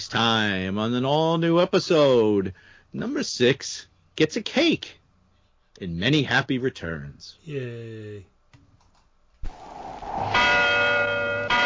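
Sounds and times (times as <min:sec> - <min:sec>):
speech: 0:00.0 - 0:05.0, 0:05.8 - 0:08.3
church bell ringing: 0:10.4 - 0:11.6.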